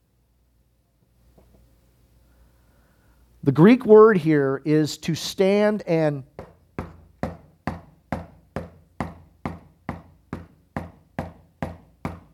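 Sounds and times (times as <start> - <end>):
speech: 3.4 - 6.4
firm knocking on a door: 6.3 - 12.3.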